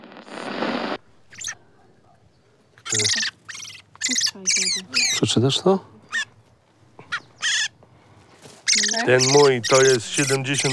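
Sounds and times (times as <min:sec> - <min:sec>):
caged small songbirds chirping: 0:02.2 - 0:06.4, 0:07.0 - 0:07.7, 0:08.6 - 0:10.7
speech: 0:02.9 - 0:03.4, 0:04.4 - 0:06.0, 0:09.0 - 0:10.7.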